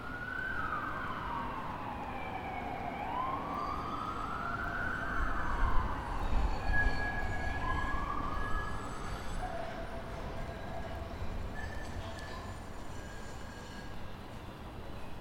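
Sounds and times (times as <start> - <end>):
ambulance siren wailing: 0.0 - 11.1
steady hum of city traffic: 0.0 - 15.1.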